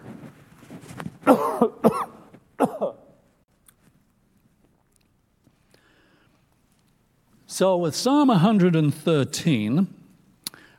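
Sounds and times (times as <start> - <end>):
harsh coughs: 1.2 - 3.2
speech: 1.3 - 1.7, 7.6 - 10.0.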